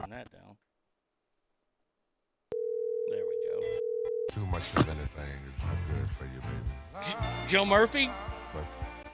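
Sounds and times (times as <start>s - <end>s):
telephone line tone while placing a call: 2.5s - 4.4s
speech: 4.4s - 8.9s.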